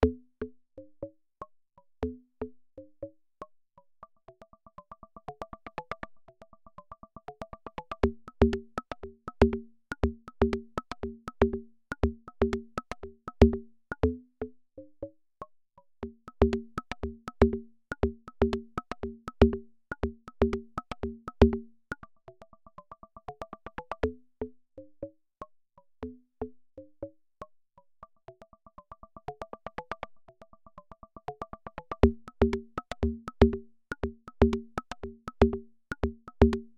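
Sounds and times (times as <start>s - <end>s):
hand drums: 8.0s - 14.0s, 16.0s - 21.7s, 31.4s - 36.7s.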